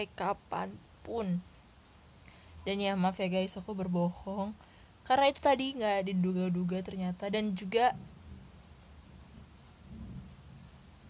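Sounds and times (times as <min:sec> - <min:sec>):
speech: 0:00.0 - 0:01.5, 0:02.6 - 0:08.1
soft steady hiss of light rain: 0:00.0 - 0:11.0
low rumble of thunder: 0:07.9 - 0:11.0.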